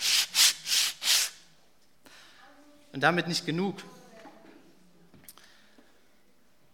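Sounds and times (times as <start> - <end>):
sandpaper scraping across a surface: 0.0 - 1.4
speech: 3.0 - 4.0.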